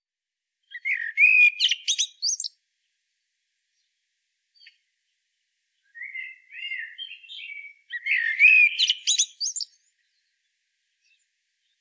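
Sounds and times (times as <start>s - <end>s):
common blackbird low mellow whistled song: 0.6s - 2.6s, 4.6s - 4.8s, 5.8s - 10.4s
common blackbird squeaky high twitter: 0.8s - 2.5s, 6.0s - 9.7s.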